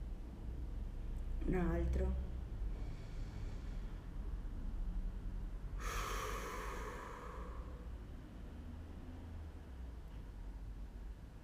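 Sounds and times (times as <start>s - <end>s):
steady low hum: 0.0s - 11.4s
speech: 1.5s - 2.3s
person inhaling: 2.7s - 4.0s, 5.8s - 8.0s
person forcefully exhaling: 2.7s - 4.1s, 5.8s - 8.0s.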